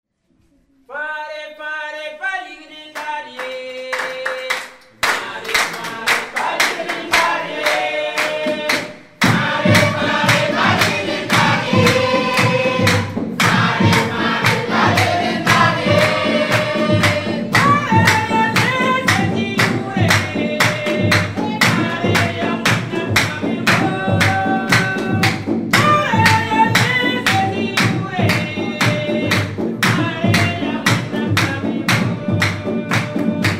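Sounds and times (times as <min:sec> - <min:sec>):
people singing in Ouagadougou: 0:01.0 - 0:33.5
hands clapping in Ouagadougou: 0:03.0 - 0:33.5
djembe drumming in Ouagadougou: 0:05.2 - 0:33.5.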